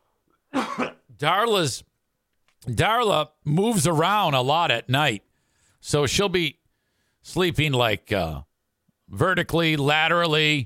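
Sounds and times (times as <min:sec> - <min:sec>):
person gagging and coughing: 0:00.5 - 0:01.1
speech: 0:00.8 - 0:01.9, 0:02.6 - 0:06.6, 0:07.2 - 0:08.5, 0:09.1 - 0:10.6.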